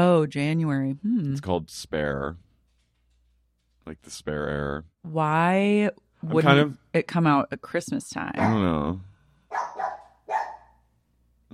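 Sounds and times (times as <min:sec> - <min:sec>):
speech: 0:00.0 - 0:02.4, 0:03.9 - 0:09.9
dog barking: 0:08.4 - 0:08.8, 0:09.5 - 0:10.8.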